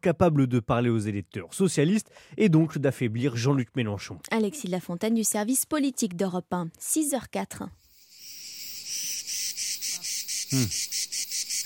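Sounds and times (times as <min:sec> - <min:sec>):
speech: 0:00.0 - 0:07.8, 0:10.5 - 0:11.0
bird-like chirp: 0:07.8 - 0:11.6
cicadas buzzing in a pine forest at a Mediterranean cove: 0:07.8 - 0:11.6.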